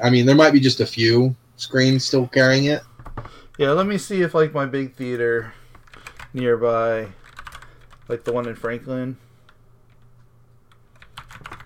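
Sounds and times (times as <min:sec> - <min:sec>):
speech: 0:00.0 - 0:05.6, 0:06.3 - 0:07.2, 0:08.1 - 0:09.2
low steady hum: 0:00.0 - 0:11.6
typing on a computer keyboard: 0:05.8 - 0:06.4, 0:07.1 - 0:08.8, 0:10.7 - 0:11.6.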